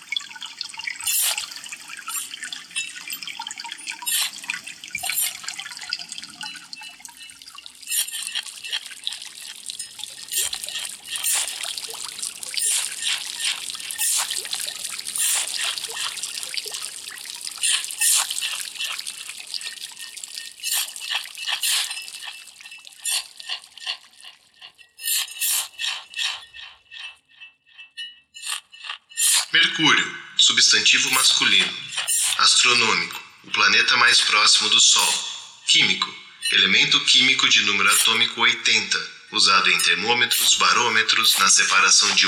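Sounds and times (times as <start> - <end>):
underground river water trickling and flowing: 0.0 - 42.2
speech: 29.8 - 31.9, 32.6 - 42.2.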